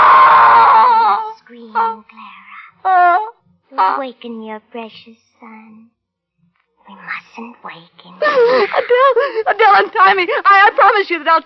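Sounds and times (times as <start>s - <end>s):
woman screaming in terror: 0.0s - 1.3s
speech: 2.0s - 3.2s, 3.8s - 6.0s, 6.9s - 11.4s
laughter: 8.2s - 11.4s.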